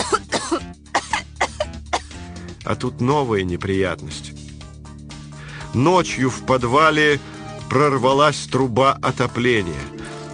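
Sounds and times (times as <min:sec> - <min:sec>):
sick child coughing hoarsely: 0:00.0 - 0:02.2
speech: 0:02.6 - 0:04.4, 0:05.8 - 0:10.0.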